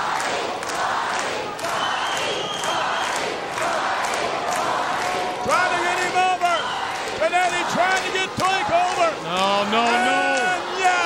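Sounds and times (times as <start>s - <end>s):
large arena crowd yelling and cheering at a wrestling match: 0.0s - 11.0s.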